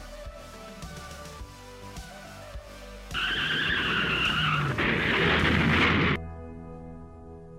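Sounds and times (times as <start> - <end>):
car tyres screeching in a sustained skid: 3.2 - 6.2
heavy car crash and rumbling impact: 3.8 - 6.2.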